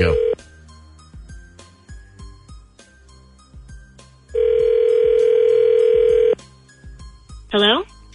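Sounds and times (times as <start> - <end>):
telephone dial tone while a call is being placed: 0.0 - 0.4, 4.4 - 6.4.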